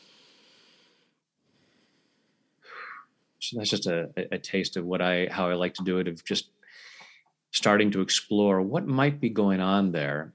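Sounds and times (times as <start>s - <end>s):
person taking a slow deep breath: 0.0s - 3.1s
speech: 3.5s - 6.6s, 7.6s - 10.3s.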